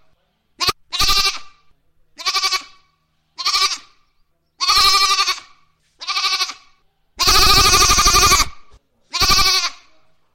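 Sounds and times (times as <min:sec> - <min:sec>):
goat bleating: 0:00.6 - 0:01.6, 0:02.2 - 0:04.0, 0:04.6 - 0:09.9.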